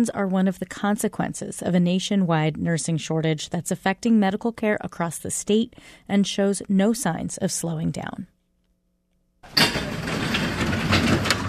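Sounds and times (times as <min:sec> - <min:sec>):
speech: 0:00.0 - 0:08.3
garage-style storage unit door pulled open: 0:09.5 - 0:11.4.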